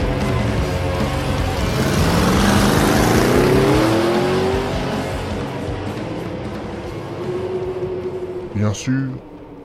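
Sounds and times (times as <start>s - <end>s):
all-terrain vehicle engine starting in a garage and revving as it drives off: 0.1s - 7.7s
speech: 8.7s - 9.3s.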